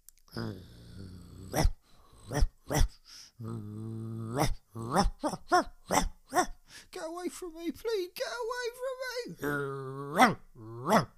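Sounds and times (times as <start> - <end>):
voice imitating an angry dog growling and barking: 0.3 - 6.6, 9.0 - 11.1.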